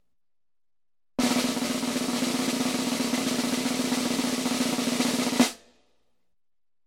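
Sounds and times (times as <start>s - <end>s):
military snare drum roll: 1.2s - 5.6s.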